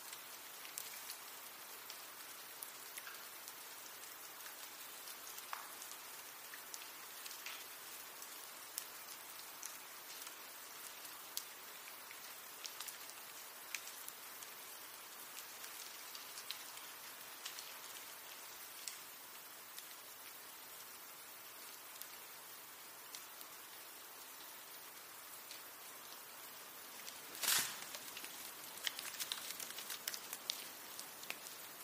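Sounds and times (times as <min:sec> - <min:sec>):
melting snow dripping from trees in a bright patter: 0:00.0 - 0:31.8.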